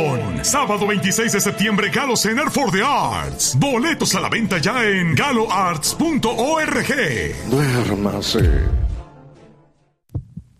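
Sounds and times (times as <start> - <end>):
speech: 0.4 - 8.8
child's racing heartbeat thumps: 10.1 - 10.5.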